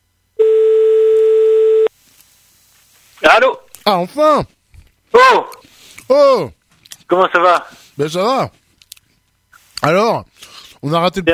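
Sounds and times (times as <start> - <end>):
telephone ringing tone on the line: 0.4 - 1.9
speech: 3.9 - 8.6, 9.8 - 11.3.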